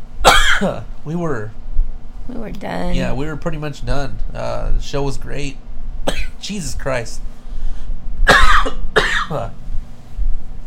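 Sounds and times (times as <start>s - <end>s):
steady low hum: 0.0s - 10.6s
rough coughs from a very scratchy throat: 0.2s - 0.9s, 6.1s - 6.4s, 8.2s - 9.6s
speech: 0.6s - 1.6s, 2.3s - 7.3s, 9.3s - 9.6s.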